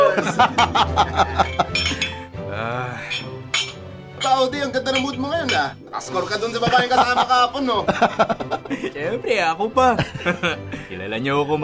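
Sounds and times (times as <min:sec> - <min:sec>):
laughter: 0:00.0 - 0:01.9, 0:06.2 - 0:09.2, 0:09.9 - 0:10.9
speech: 0:00.2 - 0:01.6, 0:04.4 - 0:11.6
glasses clinking in a toast: 0:01.2 - 0:02.3, 0:03.0 - 0:06.8.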